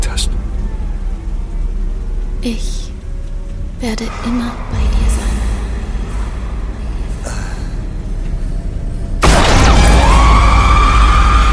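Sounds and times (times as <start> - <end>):
low rumble: 0.0 - 11.5
speech: 2.4 - 2.9, 3.8 - 5.1
gunshot blast: 9.2 - 10.5.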